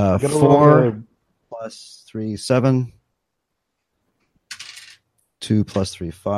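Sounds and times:
speech: 0.0s - 3.0s, 5.4s - 6.3s
dice tumbling across a hard surface: 4.5s - 5.1s.

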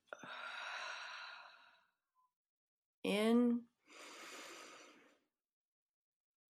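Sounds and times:
deep breathing in and out during a guided relaxation exercise: 0.2s - 1.9s, 3.9s - 5.2s.

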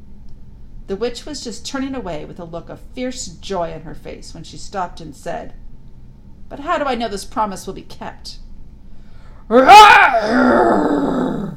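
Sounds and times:
speech: 0.9s - 5.6s, 6.5s - 8.4s, 9.5s - 11.2s
narrator's voice imitating a lion's roar: 9.5s - 11.5s.

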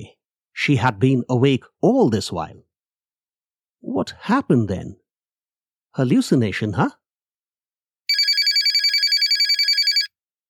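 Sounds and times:
speech: 0.0s - 2.7s, 3.8s - 5.0s, 6.0s - 7.0s
mobile phone electronic ring with high-pitched pulses: 8.1s - 10.1s.

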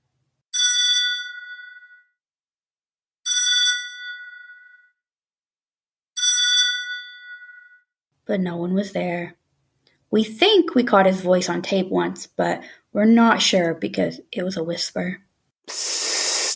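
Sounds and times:
telephone in a house ringing: 0.6s - 2.1s, 3.3s - 4.8s, 6.2s - 7.7s
speech: 8.3s - 9.4s, 10.1s - 16.0s.

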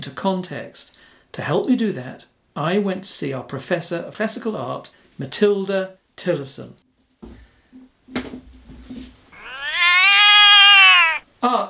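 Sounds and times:
speech: 0.0s - 6.8s, 11.4s - 11.6s
soft shuffling knocks and thumps: 7.1s - 9.3s
cat meowing after being disturbed: 9.3s - 11.2s.

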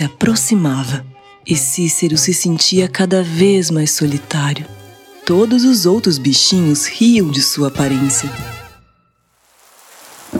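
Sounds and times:
speech: 0.0s - 8.6s
steady rain: 9.3s - 10.3s.

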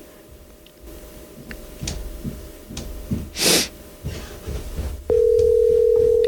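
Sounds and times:
faint shuffling noises: 0.2s - 6.2s
steady telephone tone after a dropped call: 5.1s - 6.2s.

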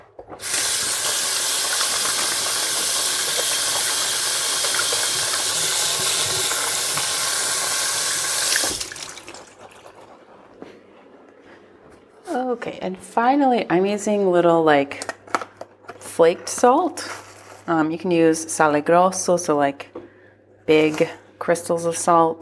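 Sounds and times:
tap water rushing over oily hands: 0.3s - 10.2s
speech: 12.8s - 15.1s, 16.2s - 19.9s, 20.7s - 22.4s.

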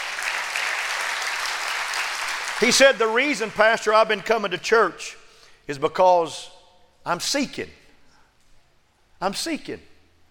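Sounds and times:
large audience clapping: 0.0s - 4.0s
speech: 2.6s - 7.8s, 9.2s - 9.9s.

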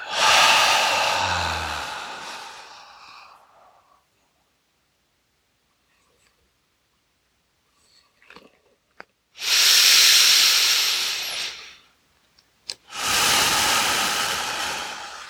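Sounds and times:
slow deep breathing: 0.0s - 3.9s, 9.4s - 11.7s, 12.9s - 15.2s.

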